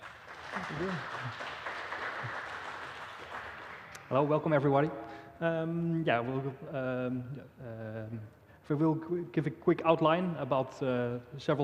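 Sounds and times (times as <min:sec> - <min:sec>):
audience applauding: 0:00.0 - 0:04.4
speech: 0:00.6 - 0:02.4, 0:04.1 - 0:11.6.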